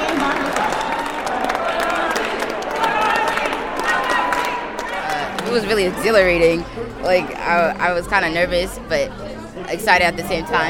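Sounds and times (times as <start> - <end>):
audience clapping: 0.0 - 6.6
audience cheering: 0.0 - 7.4
crowd murmur: 0.0 - 10.6
speech: 5.6 - 10.6.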